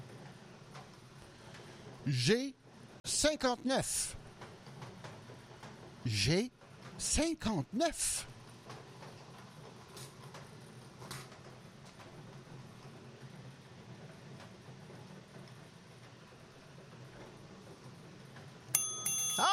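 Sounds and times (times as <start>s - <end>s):
speech: 2.0s - 4.2s, 6.0s - 8.3s
bright sharp bell ringing: 18.8s - 19.5s.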